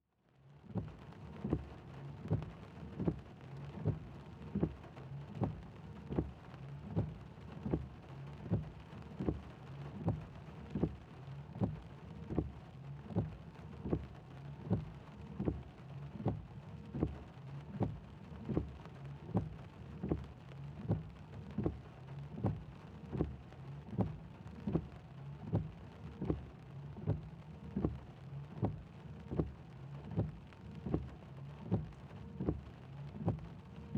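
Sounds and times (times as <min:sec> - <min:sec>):
traffic in rain heard from a car interior: 0:00.3 - 0:33.9
car wipers on: 0:00.7 - 0:33.9.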